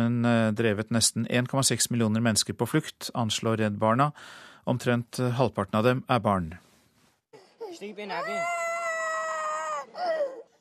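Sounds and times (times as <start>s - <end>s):
speech: 0.0s - 6.7s, 7.7s - 8.6s
young girl screaming in pain: 7.7s - 10.5s.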